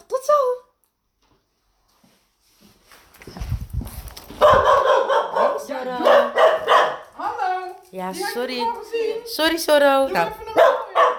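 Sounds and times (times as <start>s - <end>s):
dog excitedly barking and yipping: 4.3s - 7.2s, 10.4s - 11.1s
speech: 8.0s - 10.7s.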